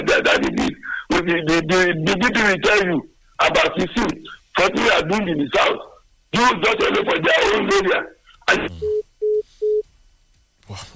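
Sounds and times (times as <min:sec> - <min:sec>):
speech: 0:01.2 - 0:09.0, 0:10.7 - 0:10.9
telephone dial tone beeps after a dropped phone call: 0:08.8 - 0:09.8.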